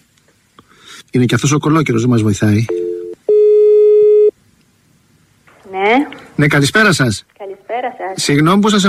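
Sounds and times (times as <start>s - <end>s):
speech: 1.1s - 2.9s, 6.0s - 7.4s, 8.1s - 8.8s
electronic telephone ringing tone on an outgoing call: 2.7s - 4.3s.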